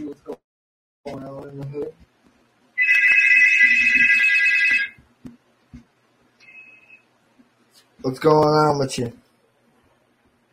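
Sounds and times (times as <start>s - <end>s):
speech: 1.1s - 2.1s, 8.0s - 9.2s
electronic phone ringtone from an incoming call: 2.8s - 5.0s, 6.4s - 7.0s.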